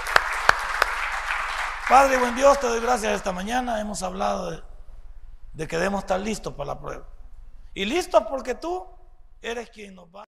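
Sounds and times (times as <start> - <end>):
congregation applauding: 0.0 - 3.4
speech: 1.9 - 4.7, 5.6 - 7.1, 7.8 - 10.2.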